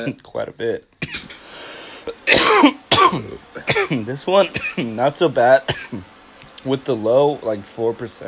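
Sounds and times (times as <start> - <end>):
speech: 0.0 - 1.2, 2.0 - 8.2
person coughing harshly after inhaling a cannabis dab: 1.0 - 4.9, 5.7 - 6.0.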